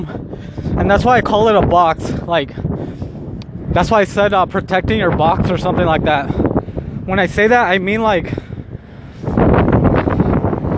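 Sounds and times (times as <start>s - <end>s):
strong cold wind blowing into a microphone outdoors: 0.0s - 10.7s
speech: 0.8s - 2.7s, 3.7s - 6.4s, 7.1s - 8.4s.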